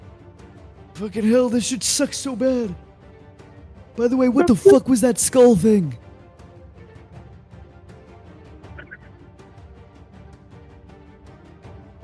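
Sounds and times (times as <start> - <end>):
speech: 1.0 - 2.8, 4.0 - 6.0
bird squawking and gobbling: 8.8 - 9.1.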